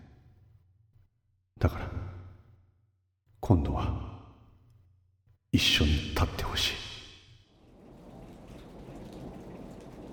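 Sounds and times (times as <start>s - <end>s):
speech: 1.6s - 2.0s, 3.4s - 4.1s, 5.5s - 6.8s
steady heavy rain: 7.5s - 10.1s.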